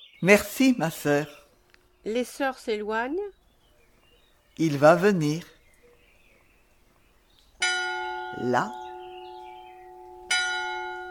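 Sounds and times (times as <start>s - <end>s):
speech: 0.2s - 1.4s, 2.0s - 3.4s, 4.6s - 5.5s, 8.3s - 8.8s
bell striking the hour: 7.6s - 11.0s.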